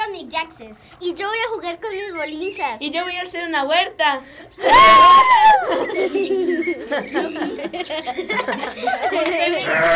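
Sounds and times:
speech: 0.2 - 9.9
laughter: 4.7 - 9.9
goats bleating: 9.4 - 9.9.

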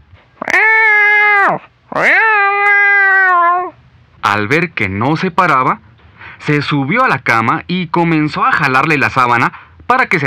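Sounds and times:
hungry cat meowing: 0.4 - 3.8
speech: 4.4 - 10.2.

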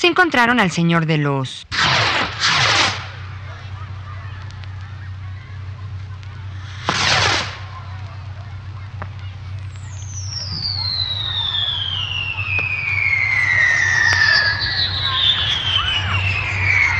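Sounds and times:
speech: 0.0 - 1.8
steady low rumble: 1.6 - 16.9
lit firework castle exploding with rapid crackling bangs: 1.7 - 16.9
thin rising whistle: 9.8 - 16.9.

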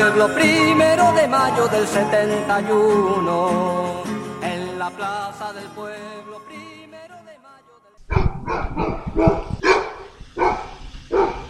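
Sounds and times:
speech: 0.2 - 4.1, 4.8 - 6.6
small dogs barking at an outdoor town square: 8.1 - 11.4.

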